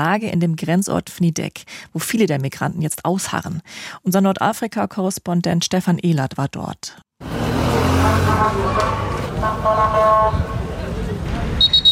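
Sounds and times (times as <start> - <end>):
speech: 0.0 - 9.0
street traffic noise: 7.2 - 11.9
ambulance sirens wailing: 7.3 - 10.3
crowds shouting in a chaotic street: 8.1 - 9.5
short sharp police whistle blasts: 11.6 - 11.9.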